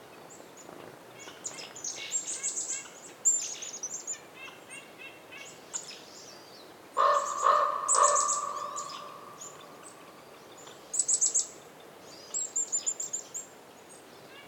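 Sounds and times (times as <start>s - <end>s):
wind in a winter forest: 0.0s - 14.4s
small birds chirping in a winter forest: 0.2s - 14.4s
raven hoarse calls in a winter forest: 7.0s - 10.1s.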